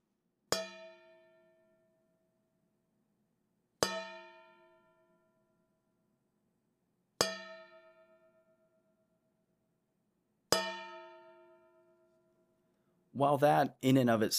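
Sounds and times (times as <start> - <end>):
wooden spoon striking a large metal mixing bowl: 0.5 - 1.2, 3.8 - 5.0, 7.2 - 8.4, 10.5 - 12.1
speech: 13.2 - 14.3.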